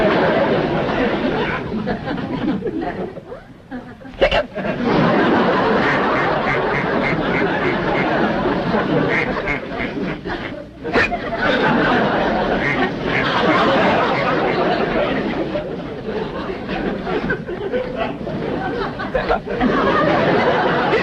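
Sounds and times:
laughter: 0:00.0 - 0:21.0
duck quacking: 0:05.7 - 0:08.3, 0:08.9 - 0:11.3, 0:12.5 - 0:14.8.

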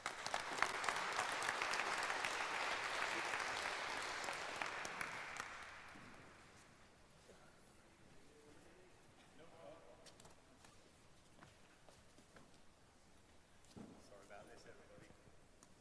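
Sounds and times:
audience at a talk applauding a speaker: 0:00.0 - 0:06.5.

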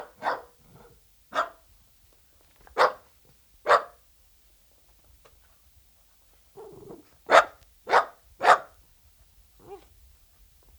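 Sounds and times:
Dachshund barking: 0:00.0 - 0:01.6, 0:02.8 - 0:03.1, 0:03.7 - 0:04.0, 0:06.6 - 0:08.8.

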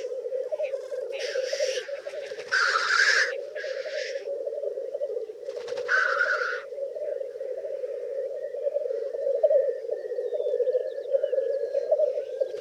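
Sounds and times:
black grouse Tetrao tetrix bubbling coo: 0:00.0 - 0:12.5
black grouse Tetrao tetrix harsh hissing sneeze-like bursts: 0:00.7 - 0:04.3, 0:05.8 - 0:06.7.

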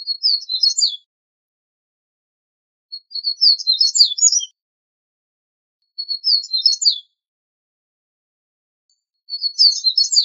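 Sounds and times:
Double-collared seedeater Sporophila caerulescens singing twittering phrases: 0:00.0 - 0:01.1, 0:02.9 - 0:04.6, 0:05.9 - 0:07.2, 0:09.2 - 0:10.2.

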